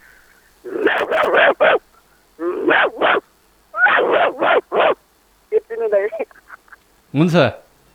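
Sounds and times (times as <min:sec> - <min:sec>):
person imitating a dog barking: 0:00.7 - 0:06.3
speech: 0:07.1 - 0:07.6.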